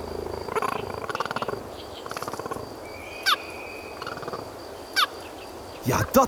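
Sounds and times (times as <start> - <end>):
cheetah purring and rumbling: 0.0 - 2.8
cheetah chirping call, bird-like: 0.0 - 4.4
steady outdoor noise: 0.0 - 6.2
speech: 5.9 - 6.2.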